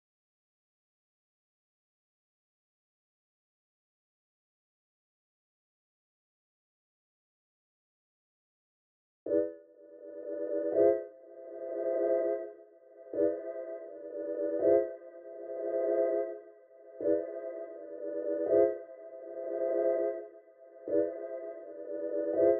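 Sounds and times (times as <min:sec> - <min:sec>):
siren synth loop: 0:09.3 - 0:22.5.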